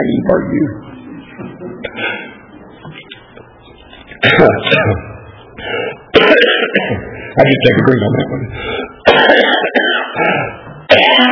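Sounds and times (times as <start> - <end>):
speech: 0.0 - 0.9, 4.2 - 11.3
harsh rasping coughs: 4.2 - 7.2, 8.7 - 11.3.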